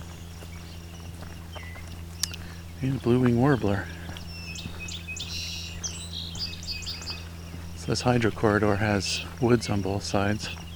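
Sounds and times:
low steady hum: 0.0s - 10.7s
ovenbird song in woods beside a hydro corridor: 0.0s - 10.7s
speech: 2.8s - 4.0s, 7.9s - 10.6s.

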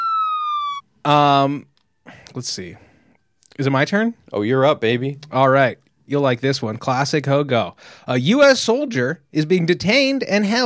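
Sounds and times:
police siren wailing: 0.0s - 1.4s
speech: 1.0s - 1.7s, 2.3s - 2.9s, 3.6s - 10.6s.

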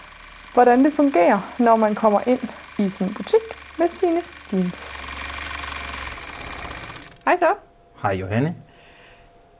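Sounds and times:
sewing machine running: 0.0s - 7.4s
speech: 0.6s - 5.1s, 7.3s - 8.6s.

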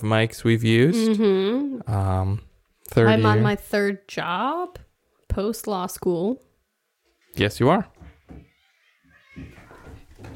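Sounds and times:
speech: 0.0s - 6.5s, 7.4s - 8.4s
cats scuffling and playing: 8.0s - 10.3s
brief strained cat cries: 8.4s - 10.0s.

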